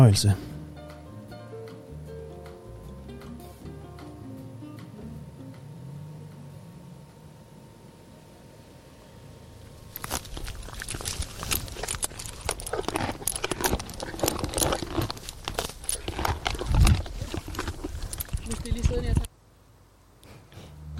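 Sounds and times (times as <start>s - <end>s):
speech: 0.0s - 0.5s
horses moving with hooves clattering: 9.7s - 19.3s
shuffling of horses: 9.8s - 19.3s.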